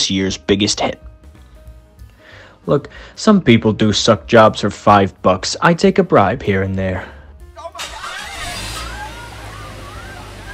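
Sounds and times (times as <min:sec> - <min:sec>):
speech: 0:00.1 - 0:01.1, 0:02.6 - 0:07.2
car engine starting up and running: 0:07.7 - 0:10.5.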